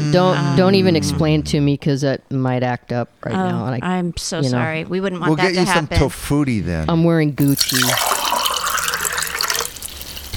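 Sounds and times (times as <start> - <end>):
speech: 0.1 - 8.2
liquid pouring with a bright splashing gurgle: 7.4 - 10.3.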